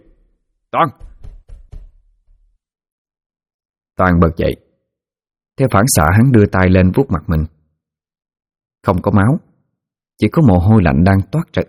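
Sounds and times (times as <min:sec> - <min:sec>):
speech: 0:00.7 - 0:01.1, 0:04.0 - 0:04.6, 0:05.6 - 0:07.6, 0:08.8 - 0:09.5, 0:10.2 - 0:11.6
knocking on a door: 0:00.8 - 0:02.6.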